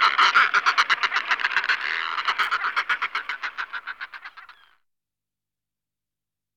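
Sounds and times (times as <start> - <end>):
Northern fulmar producing a guttural chattering cackle: 0.0 - 4.8.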